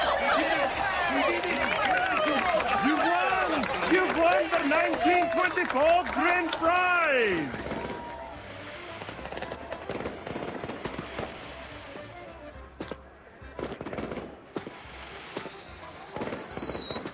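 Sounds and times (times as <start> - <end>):
laughter: 0.0 - 7.9
fireworks crackling and popping: 1.1 - 13.0, 13.6 - 17.1
speech: 4.7 - 7.7
high firework whistling streaks: 15.2 - 17.1.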